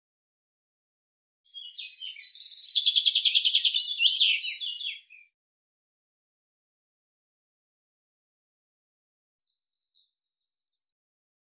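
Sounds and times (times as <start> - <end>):
Common chaffinch delivering a complete song phrase: 1.5 - 5.4, 9.4 - 11.0.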